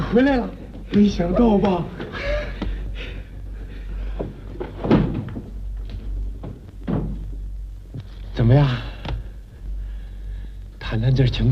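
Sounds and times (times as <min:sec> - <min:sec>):
steady low hum: 0:00.0 - 0:11.5
speech: 0:00.1 - 0:02.3, 0:08.4 - 0:08.9, 0:10.9 - 0:11.5
door being opened with wooden knocks and thumps: 0:04.2 - 0:07.4.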